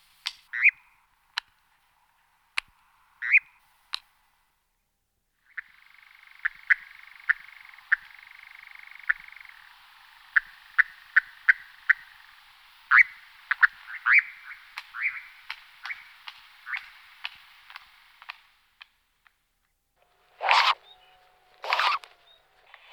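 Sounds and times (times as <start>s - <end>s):
European nightjar Caprimulgus europaeus short chirping notes: 5.4s - 18.2s, 20.3s - 22.9s.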